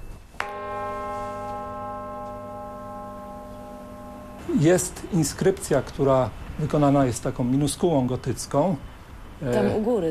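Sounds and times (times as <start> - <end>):
church bell tapped and ringing: 0.4 - 7.0
speech: 4.5 - 10.1.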